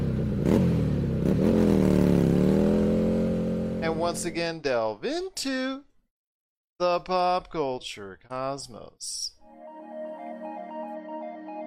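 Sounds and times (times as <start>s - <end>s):
motorcycle engine revving: 0.0s - 4.2s
speech: 4.0s - 5.9s, 6.8s - 9.4s.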